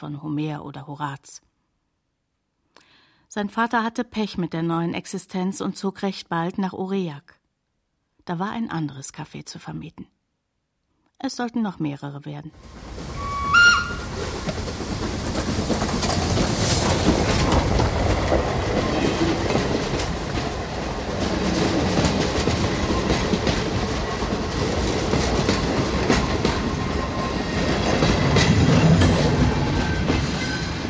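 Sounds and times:
speech: 0:00.0 - 0:01.5, 0:03.3 - 0:07.4, 0:08.2 - 0:10.2, 0:11.2 - 0:13.1
four-cylinder locomotive built 1887 passing: 0:12.6 - 0:30.8
locomotive wheels clickety-clacking on rails: 0:12.8 - 0:30.8
brief whistle-like tone: 0:13.1 - 0:14.1.

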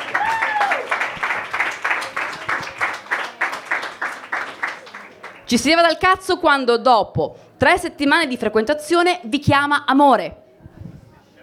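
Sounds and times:
audience applause at a comedy night: 0:00.0 - 0:05.5
speech: 0:05.5 - 0:10.4.

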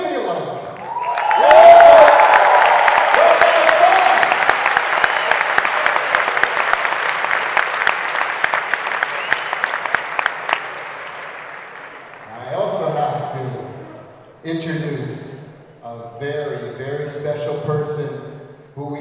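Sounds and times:
live audience cheering at a video game music concert: 0:00.8 - 0:13.0.

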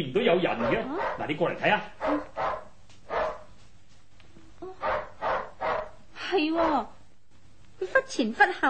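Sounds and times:
speech: 0:00.0 - 0:02.4, 0:06.3 - 0:07.0, 0:07.8 - 0:08.6
dog barking at the garden gate: 0:00.6 - 0:01.3, 0:02.0 - 0:03.6, 0:04.8 - 0:06.9.

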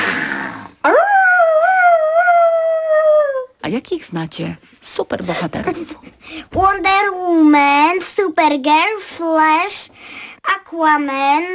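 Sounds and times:
person imitating a wolf howl: 0:00.0 - 0:03.6
speech: 0:03.7 - 0:11.5.

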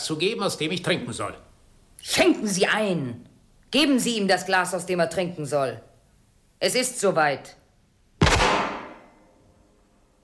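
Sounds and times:
speech: 0:00.1 - 0:05.9, 0:06.6 - 0:07.6
gunshot: 0:08.2 - 0:09.3.

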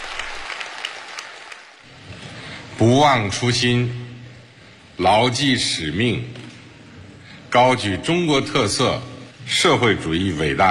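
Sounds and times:
warm applause in a village Party branch meeting room: 0:00.0 - 0:01.8
speech: 0:02.8 - 0:04.0, 0:05.0 - 0:06.4, 0:07.5 - 0:10.6.

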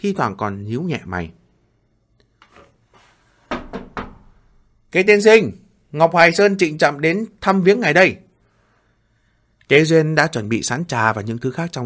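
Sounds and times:
speech: 0:00.0 - 0:01.4, 0:04.9 - 0:08.2, 0:09.7 - 0:11.8
knocking on the wooden door of a small pavilion: 0:03.5 - 0:04.3.

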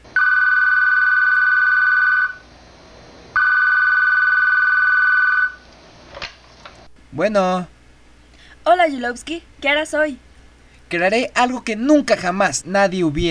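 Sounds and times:
telephone ringing with long electronic tones: 0:00.1 - 0:02.4, 0:03.4 - 0:05.6
speech: 0:07.2 - 0:07.7, 0:08.6 - 0:10.3, 0:10.9 - 0:13.2.

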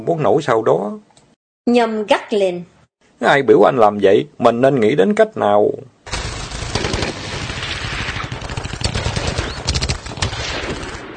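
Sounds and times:
speech: 0:00.0 - 0:05.9
loud automatic gunfire near a riverbank: 0:06.1 - 0:11.1.

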